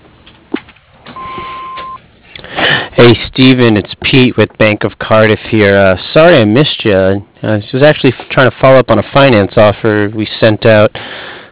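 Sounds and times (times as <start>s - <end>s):
low telephone-line hiss: 1.1s - 2.0s
answering machine beep on a paint and stain business's line: 1.2s - 2.0s
speech: 3.0s - 11.1s.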